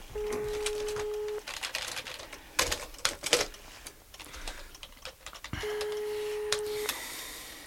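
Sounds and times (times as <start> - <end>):
phone ringback tones on an unanswered line: 0.2 - 1.4, 5.6 - 6.9
brisk keyboard typing and clicks: 0.2 - 3.5, 4.1 - 7.0.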